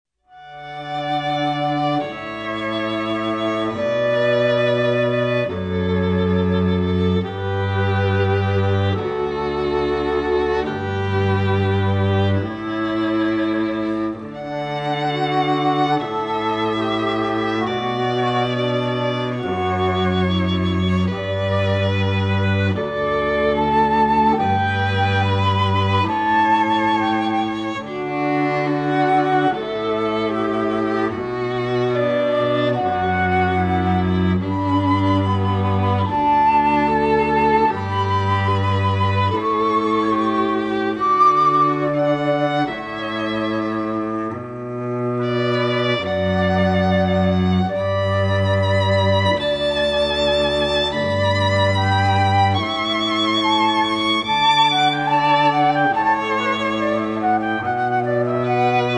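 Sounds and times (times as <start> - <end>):
flute trio playing: 0.4 - 58.9.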